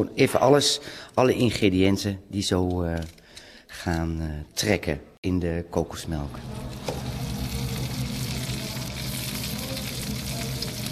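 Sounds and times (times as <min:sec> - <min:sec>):
speech: 0:00.0 - 0:07.2
tofu cubes frying in a hot wok: 0:06.6 - 0:10.9.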